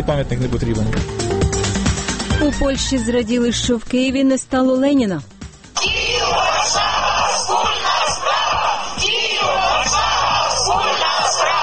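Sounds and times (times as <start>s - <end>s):
speech: 0.0s - 1.3s, 2.4s - 7.8s
large crowd shouting and chanting at a street rally in Warsaw: 5.8s - 11.6s.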